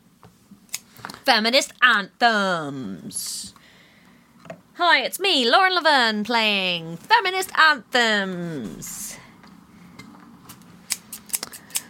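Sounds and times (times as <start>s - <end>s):
faint steady hum: 0.0s - 11.8s
speech: 1.3s - 3.6s, 4.8s - 9.1s
large scissors snipping: 10.9s - 11.8s.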